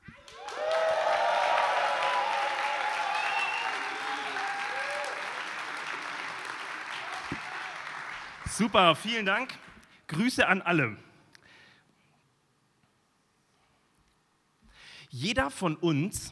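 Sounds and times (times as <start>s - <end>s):
large crowd applauding: 0.1s - 9.8s
crowd cheering, whooping and shouting: 0.2s - 8.3s
speech: 8.6s - 11.1s, 15.2s - 16.3s.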